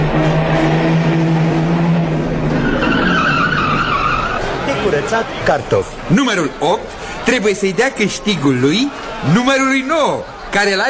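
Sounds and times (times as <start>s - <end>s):
car engine revving as vehicle pulls away: 0.0s - 5.4s
car tire noise: 0.0s - 10.6s
speech: 5.1s - 10.8s.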